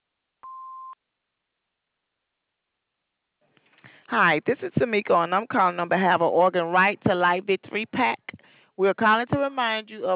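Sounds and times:
answering machine electronic beep: 0.4 - 1.0
speech: 4.1 - 10.1.

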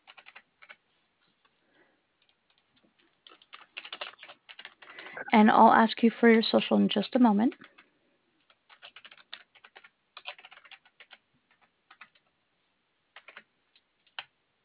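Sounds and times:
faint typing on a computer keyboard: 0.0 - 0.8, 2.2 - 5.0, 7.5 - 12.3, 13.1 - 14.3
speech: 5.3 - 7.7.

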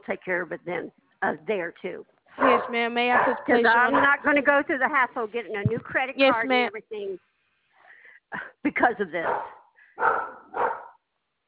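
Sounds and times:
speech: 0.0 - 7.3, 8.3 - 10.8
dog barking: 2.4 - 4.3, 9.2 - 11.0.

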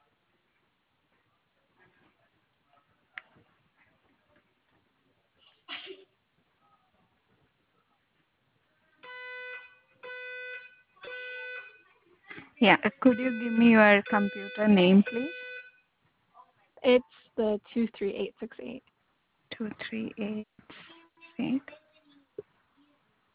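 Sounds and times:
fire alarm electronic tones during a drill: 9.0 - 11.9, 12.8 - 15.8
speech: 12.6 - 15.4, 16.8 - 18.9, 19.6 - 20.8, 21.4 - 21.8.

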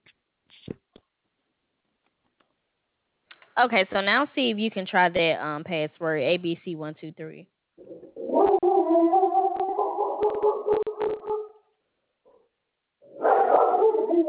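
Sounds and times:
speech: 3.6 - 8.2
dog barking and howling: 8.2 - 11.6, 13.1 - 14.2.

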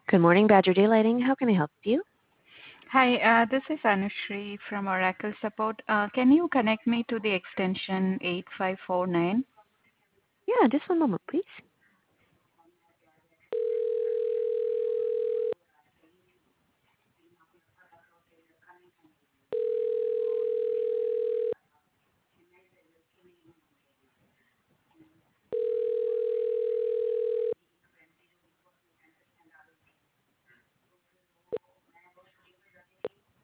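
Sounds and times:
speech: 0.1 - 2.1, 2.9 - 9.5, 10.5 - 11.7
telephone ringback tone on a call being forwarded to a voicemail system: 13.5 - 15.6, 19.5 - 21.6, 25.5 - 27.6.

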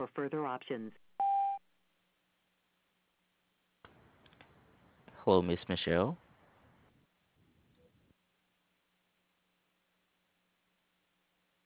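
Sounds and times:
speech: 0.0 - 1.1, 5.2 - 6.2
voicemail beep: 1.2 - 1.6.

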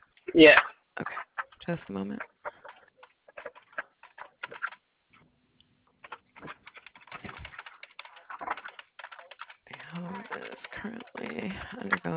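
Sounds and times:
speech: 0.4 - 2.3, 10.8 - 12.1
fingers typing on a computer keyboard: 2.5 - 4.8, 6.0 - 12.1.

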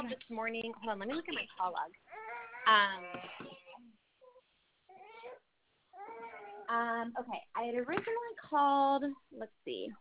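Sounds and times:
speech: 0.1 - 4.0, 6.7 - 10.0
fussy baby crying during a phone call: 2.1 - 6.7.

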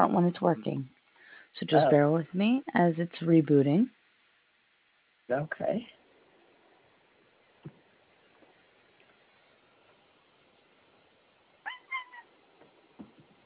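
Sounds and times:
speech: 0.0 - 4.0, 5.3 - 6.0
quiet hiss: 0.0 - 13.4
cat meowing: 11.7 - 12.3.

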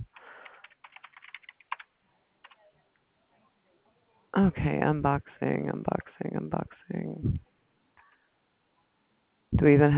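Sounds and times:
typing on a computer keyboard: 0.1 - 2.6
speech: 4.4 - 7.5, 9.6 - 9.9.

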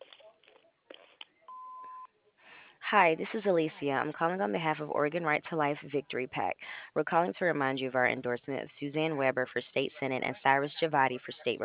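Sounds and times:
answering machine beep after the recorded greeting: 1.5 - 2.1
speech: 2.9 - 11.6.

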